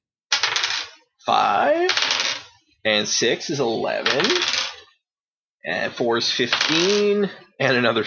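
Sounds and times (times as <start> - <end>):
dice tumbling across a hard table: 0.3 - 1.0, 1.6 - 2.6, 4.0 - 4.8, 6.4 - 7.1
speech: 1.3 - 2.1, 2.8 - 4.6, 5.6 - 8.0.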